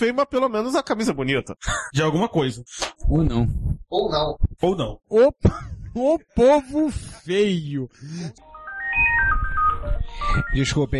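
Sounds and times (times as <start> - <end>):
speech: 0.0 - 10.9
melodic electronic phone or intercom ringtone: 8.4 - 10.9.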